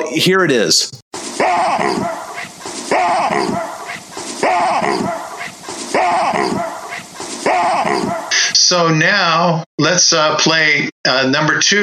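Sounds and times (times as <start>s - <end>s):
speech: 0.0s - 1.0s, 1.6s - 2.2s, 8.6s - 11.8s
baboon barking: 1.2s - 8.4s.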